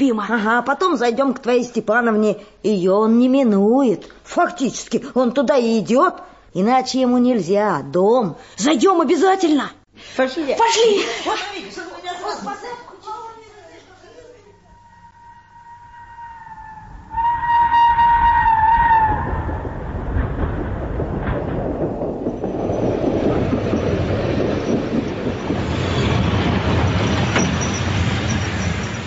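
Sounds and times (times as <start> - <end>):
speech: 0.0 - 12.8
express passenger train horn blast: 14.6 - 19.2
express passenger train rumbling through a busy railway station: 14.6 - 29.0.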